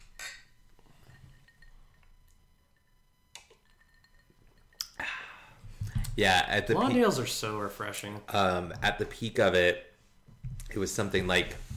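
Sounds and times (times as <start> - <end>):
glasses clinking in a toast: 0.0 - 2.9, 3.5 - 5.0
soft low hum: 0.0 - 11.7
speech: 6.2 - 9.9, 10.8 - 11.6.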